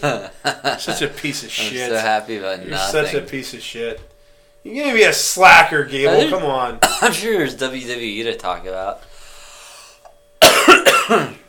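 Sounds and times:
laughter: 0:00.0 - 0:02.0
speech: 0:00.0 - 0:09.1, 0:11.1 - 0:11.4
faint steady hum: 0:00.0 - 0:11.4
person coughing: 0:06.8 - 0:07.3, 0:10.4 - 0:11.4.

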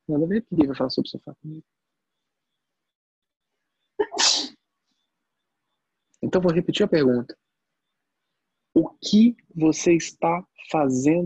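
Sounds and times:
speech: 0:00.1 - 0:01.8, 0:06.2 - 0:07.4, 0:08.8 - 0:11.2
person sneezing: 0:04.0 - 0:04.5.

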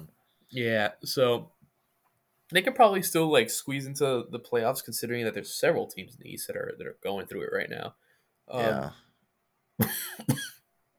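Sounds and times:
speech: 0:00.5 - 0:01.6, 0:02.5 - 0:09.0
person coughing: 0:09.8 - 0:10.6.

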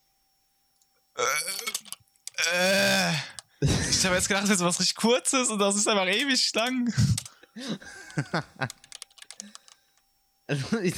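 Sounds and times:
computer keyboard typing: 0:01.5 - 0:10.1
speech: 0:03.6 - 0:08.8, 0:10.5 - 0:10.9.

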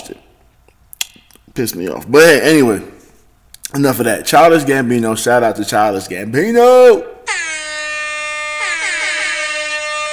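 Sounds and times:
speech: 0:00.1 - 0:00.3, 0:01.6 - 0:03.0, 0:03.7 - 0:07.1
air horn blasts: 0:07.3 - 0:10.1.

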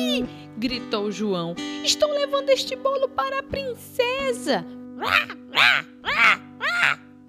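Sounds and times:
speech: 0:00.0 - 0:07.0
crows cawing: 0:05.0 - 0:07.2.

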